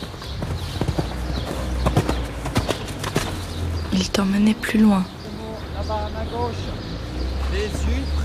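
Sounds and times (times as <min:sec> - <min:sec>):
horses' hooves clip-clopping: 0:00.0 - 0:03.9
speech: 0:04.0 - 0:05.2, 0:05.8 - 0:06.9, 0:07.5 - 0:08.2.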